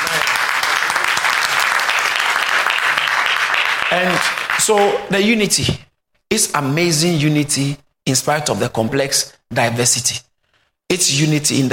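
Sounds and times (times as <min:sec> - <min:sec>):
audience clapping: 0:00.0 - 0:05.2
speech: 0:03.9 - 0:10.3, 0:10.9 - 0:11.7.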